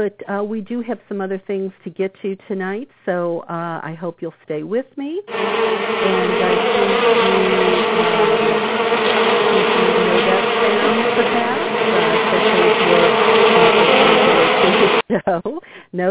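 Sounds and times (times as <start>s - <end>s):
speech: 0.0s - 8.8s, 10.7s - 13.5s, 14.7s - 16.0s
many bees buzzing: 5.3s - 15.0s.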